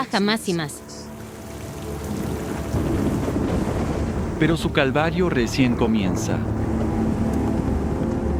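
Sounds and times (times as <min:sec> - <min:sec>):
speech: 0:00.0 - 0:01.0, 0:04.4 - 0:06.6
heavy rain downpour: 0:01.2 - 0:08.3
deep thunder rumbling: 0:01.8 - 0:08.3.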